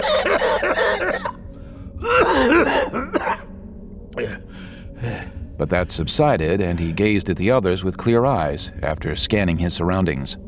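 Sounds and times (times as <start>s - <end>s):
old man coughing violently: 0.0s - 1.4s, 2.0s - 3.5s, 4.2s - 4.4s
speech: 5.6s - 10.4s.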